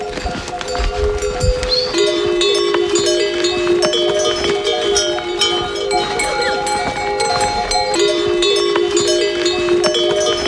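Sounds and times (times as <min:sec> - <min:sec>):
animal bells ringing on a trail: 0:00.0 - 0:10.4
low shuffle of animals on a trail: 0:00.0 - 0:10.4
yaks, donkeys and horses clip-clopping hooves on a trail: 0:00.0 - 0:10.4.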